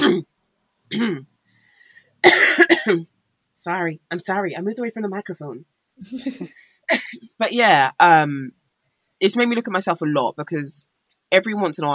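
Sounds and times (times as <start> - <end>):
person with asthma coughing: 0.9 - 1.2, 2.2 - 3.1, 6.2 - 7.3
speech: 0.9 - 1.3, 2.2 - 8.6, 9.2 - 11.9.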